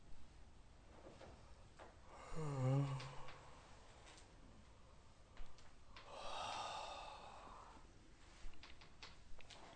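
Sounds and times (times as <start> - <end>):
person yawning while stretching: 2.1 - 3.4, 6.1 - 7.7.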